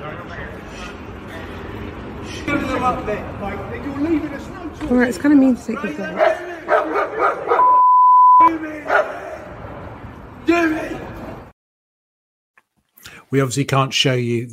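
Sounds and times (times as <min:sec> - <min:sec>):
speech: 0:02.8 - 0:06.5, 0:13.3 - 0:14.5
two dogs barking aggressively in a video: 0:06.0 - 0:07.7, 0:08.9 - 0:09.4
steady electronic beep tone: 0:07.6 - 0:08.5.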